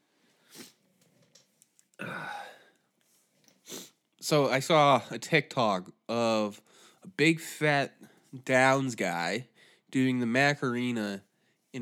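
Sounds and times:
person sniffing: 0:00.5 - 0:00.8, 0:03.6 - 0:04.0
speech: 0:04.3 - 0:11.7.

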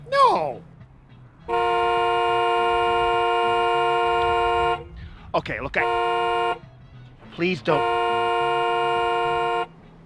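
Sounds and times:
low rumble of traffic or engine noise: 0:00.0 - 0:10.0
protester's car horn honking: 0:01.4 - 0:05.0, 0:05.7 - 0:06.7, 0:07.5 - 0:09.7
speech: 0:05.4 - 0:06.6, 0:07.4 - 0:08.0.

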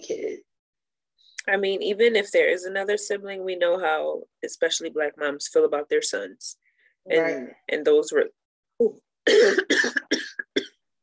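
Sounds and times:
speech: 0:01.5 - 0:10.0
person coughing from a tickle in the throat: 0:09.3 - 0:10.8.

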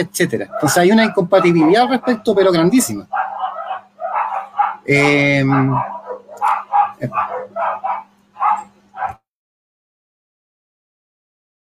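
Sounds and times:
speech: 0:00.0 - 0:03.2, 0:04.8 - 0:06.0, 0:07.0 - 0:07.3
faint steady hum: 0:00.0 - 0:09.2
dog barking: 0:00.5 - 0:02.4, 0:03.1 - 0:09.2.

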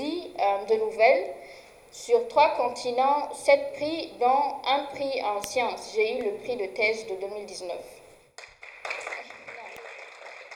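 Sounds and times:
speech: 0:00.4 - 0:08.0
audience applause: 0:08.4 - 0:10.5.

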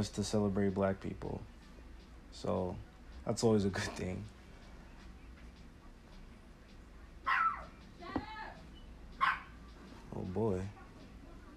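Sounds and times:
speech: 0:00.0 - 0:01.6, 0:02.3 - 0:04.4, 0:10.2 - 0:10.8
small dog barking: 0:07.2 - 0:07.8, 0:09.2 - 0:09.6.

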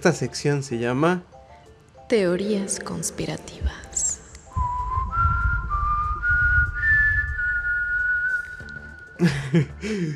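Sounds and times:
speech: 0:00.0 - 0:01.4, 0:02.1 - 0:04.0, 0:09.2 - 0:10.1
low rumbling background: 0:03.0 - 0:08.6
person whistling a short bright melody as an intro cue: 0:04.5 - 0:09.3
laughter: 0:09.2 - 0:10.1.

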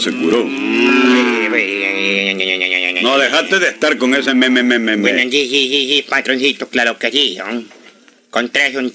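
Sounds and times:
speech: 0:00.0 - 0:08.9
calf mooing: 0:00.4 - 0:02.3.

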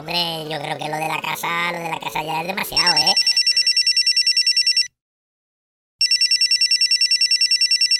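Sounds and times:
speech: 0:00.1 - 0:03.3
telephone ringing with electronic trill: 0:02.9 - 0:05.0, 0:06.0 - 0:07.9.

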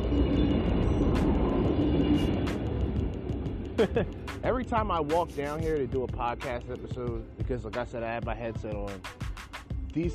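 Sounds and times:
loud train rumbling past: 0:00.0 - 0:03.8
speech: 0:03.8 - 0:09.2, 0:10.0 - 0:10.1.

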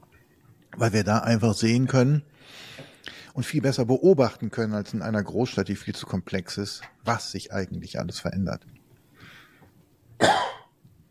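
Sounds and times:
speech: 0:00.8 - 0:08.8
single sharp cough: 0:10.2 - 0:10.7.

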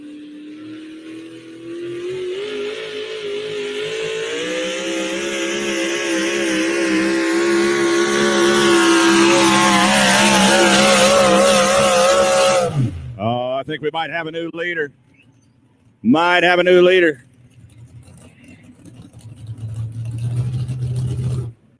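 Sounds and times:
pulling truck Hemi engine roaring under heavy load: 0:00.0 - 0:21.7
speech: 0:13.9 - 0:15.1, 0:16.0 - 0:17.2.

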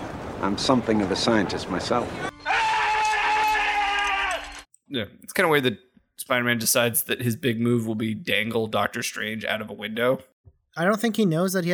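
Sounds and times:
speech: 0:00.4 - 0:02.3, 0:04.9 - 0:11.7
loud sustained strained scream sound effect: 0:02.3 - 0:04.7.

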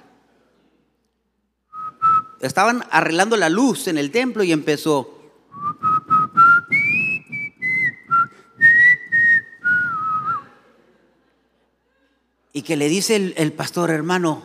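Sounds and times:
person whistling a slow hymn-like melody: 0:01.7 - 0:02.5, 0:05.5 - 0:10.5
speech: 0:02.4 - 0:05.2, 0:12.6 - 0:14.4.

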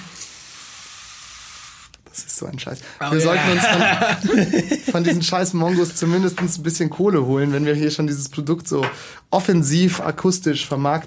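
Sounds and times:
aerosol spray hissing: 0:00.0 - 0:02.0
speech: 0:02.2 - 0:11.0
laughter: 0:03.0 - 0:06.4.

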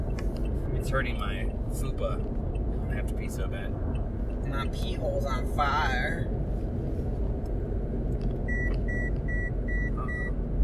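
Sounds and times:
constant low road rumble inside the vehicle: 0:00.0 - 0:10.6
speech: 0:00.9 - 0:06.7
car lane departure warning beeping as the car crosses lane lines: 0:02.5 - 0:05.2, 0:08.4 - 0:10.5.

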